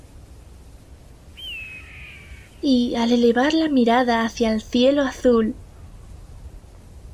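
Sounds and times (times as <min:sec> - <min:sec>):
steady low rush of wind-like noise: 0:00.0 - 0:07.1
eagle crying while flying over the desert: 0:01.4 - 0:02.6
speech: 0:02.6 - 0:05.6.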